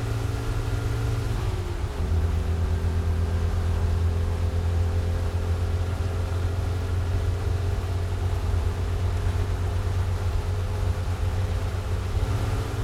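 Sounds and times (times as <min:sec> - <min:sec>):
car speeding in a video game: 0:00.0 - 0:12.8.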